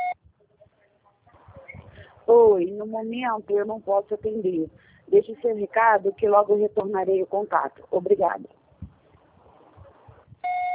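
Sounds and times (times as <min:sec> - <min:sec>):
faint low rustling noise: 0:00.2 - 0:10.7
speech: 0:02.3 - 0:08.6
voicemail recording beep: 0:10.4 - 0:10.7.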